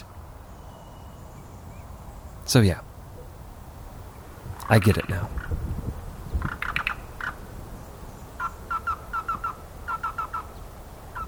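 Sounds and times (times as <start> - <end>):
bird chirping: 0.0 - 3.4, 6.2 - 11.2
speech: 2.5 - 2.9, 4.7 - 5.6.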